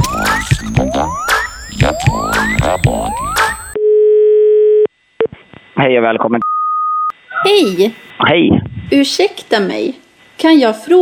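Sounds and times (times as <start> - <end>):
bouncy electronic jingle with rising boing-like sweeps: 0.0 - 3.8
steady telephone ringing tone: 0.0 - 4.6
speech: 5.8 - 6.4, 7.4 - 11.0.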